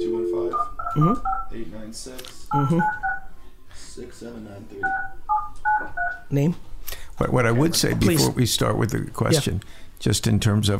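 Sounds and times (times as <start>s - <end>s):
telephone keypad dialing tones: 0.4s - 1.5s, 2.5s - 3.3s, 4.8s - 6.2s
speech: 0.6s - 3.0s, 4.0s - 5.2s, 5.8s - 10.7s.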